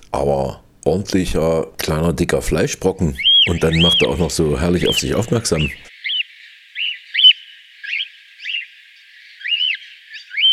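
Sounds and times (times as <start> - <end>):
speech: 0.2 - 5.9
cockatiel calling: 3.1 - 6.2, 6.8 - 8.6, 9.4 - 10.5.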